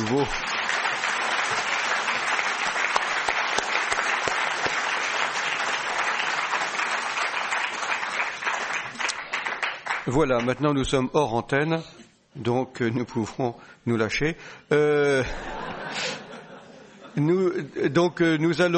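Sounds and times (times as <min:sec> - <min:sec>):
applause from a sizable audience: 0:00.0 - 0:10.6
speech: 0:00.1 - 0:00.6, 0:10.1 - 0:16.1, 0:17.2 - 0:18.7
laughter: 0:15.1 - 0:17.6.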